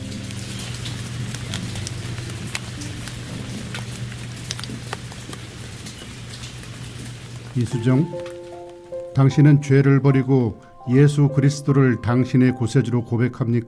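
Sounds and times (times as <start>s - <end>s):
drips and taps on a hard surface: 0.0s - 8.3s
steady rain pouring: 0.0s - 9.4s
speech: 7.6s - 8.3s, 9.2s - 13.6s.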